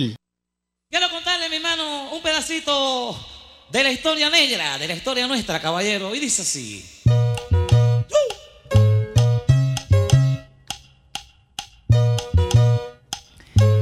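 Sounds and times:
speech: 0:00.0 - 0:00.2, 0:00.9 - 0:07.0
upbeat instrumental salsa music: 0:07.1 - 0:10.5, 0:11.9 - 0:13.0, 0:13.6 - 0:13.8.

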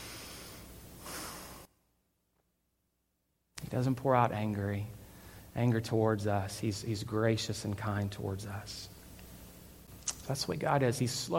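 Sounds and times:
man taking a long deep breath: 0:00.0 - 0:01.7, 0:05.0 - 0:05.5
speech: 0:03.7 - 0:05.0, 0:05.6 - 0:08.9, 0:10.3 - 0:11.3.

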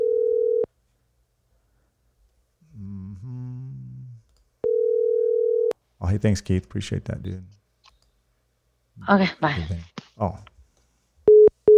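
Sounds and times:
telephone ringback tone of a phone call: 0:00.0 - 0:00.7, 0:04.6 - 0:05.7
brief harmonic vocal-like sound: 0:02.6 - 0:04.3
speech: 0:06.0 - 0:07.6, 0:09.0 - 0:10.5.

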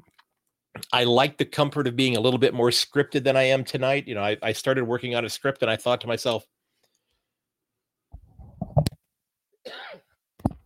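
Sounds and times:
speech: 0:00.9 - 0:06.6
person coughing during a live recording: 0:09.6 - 0:10.2.

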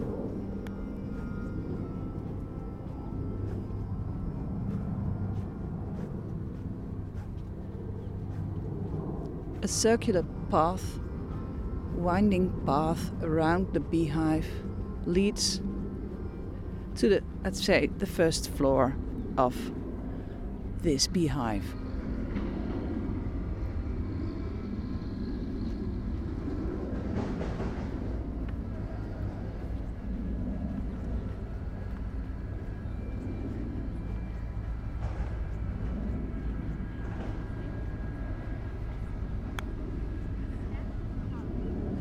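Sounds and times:
low roar of aeroplanes passing overhead at Kew Gardens: 0:00.0 - 0:41.9
rumbling hum of workers' machinery: 0:00.0 - 0:41.9
speech: 0:09.6 - 0:11.0, 0:12.0 - 0:15.7, 0:17.0 - 0:19.8, 0:20.8 - 0:21.8.

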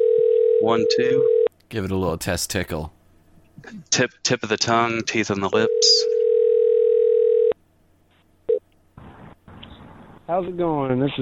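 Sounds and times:
telephone dial tone: 0:00.0 - 0:01.5, 0:05.7 - 0:07.6
speech: 0:00.6 - 0:03.0, 0:03.6 - 0:06.1, 0:10.3 - 0:11.1.

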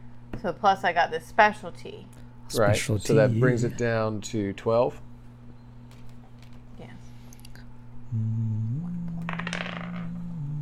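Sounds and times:
steady low electrical hum: 0:00.0 - 0:10.6
speech: 0:00.4 - 0:05.1
dice tumbling across a hard tabletop: 0:09.2 - 0:10.2.

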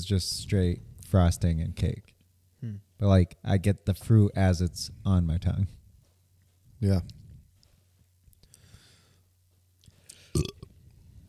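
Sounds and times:
speech: 0:00.0 - 0:05.8, 0:06.8 - 0:07.2
faint breathing: 0:08.4 - 0:09.3
short throaty burp: 0:10.3 - 0:10.7.

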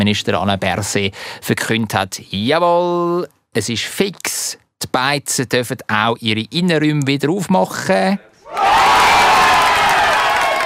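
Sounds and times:
speech: 0:00.0 - 0:08.3
large crowd cheering loudly: 0:08.4 - 0:10.6.

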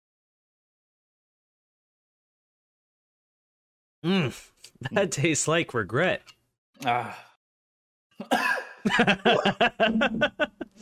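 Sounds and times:
speech: 0:04.0 - 0:07.3, 0:08.2 - 0:10.8
person with COVID coughing: 0:08.2 - 0:08.8
laughter: 0:08.6 - 0:10.8.

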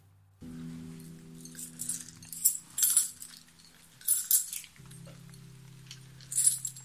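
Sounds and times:
low steady hum: 0:00.0 - 0:06.8
coins set down on a table: 0:01.5 - 0:05.2, 0:05.9 - 0:06.8.

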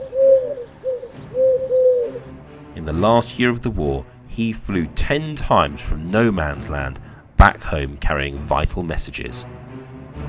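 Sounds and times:
pigeon cooing: 0:00.0 - 0:02.3
speech: 0:02.9 - 0:09.6.

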